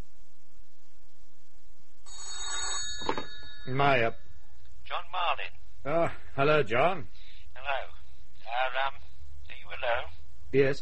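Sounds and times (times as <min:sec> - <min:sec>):
telephone bell ringing: 0:02.1 - 0:04.2
speech: 0:03.7 - 0:04.2, 0:04.9 - 0:07.8, 0:09.8 - 0:10.8.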